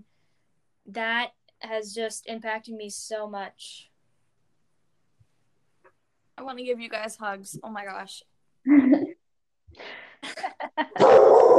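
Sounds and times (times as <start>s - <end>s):
speech: 0.9s - 3.9s, 6.4s - 9.0s
pet dog barking at home: 11.0s - 11.5s.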